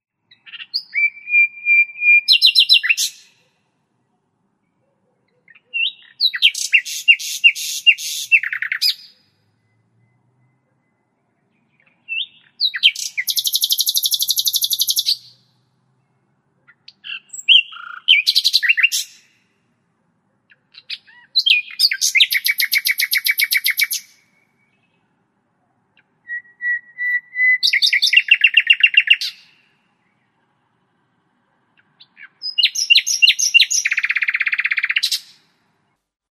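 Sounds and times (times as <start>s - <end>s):
common nightingale singing: 0.2s - 19.6s, 20.3s - 36.0s.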